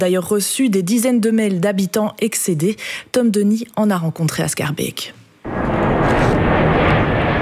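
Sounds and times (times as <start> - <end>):
speech: 0.0 - 5.2
jet airplane engine roaring overhead as a plane comes in to land in Schaarbeek Brussels: 5.4 - 7.4.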